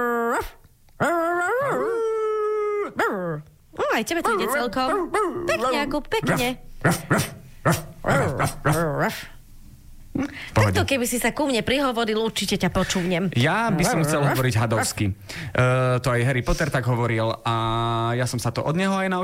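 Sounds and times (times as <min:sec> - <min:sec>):
child imitating dog yelping, howling and whimpering: 0:00.0 - 0:05.8
speech: 0:04.0 - 0:09.4, 0:10.2 - 0:19.2.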